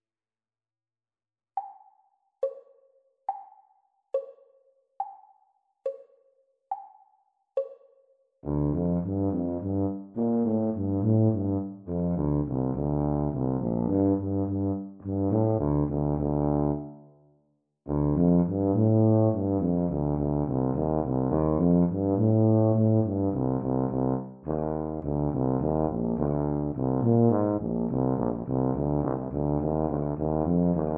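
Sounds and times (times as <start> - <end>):
E-flat tuba duet at practice speed: 8.4 - 17.0, 17.9 - 30.9.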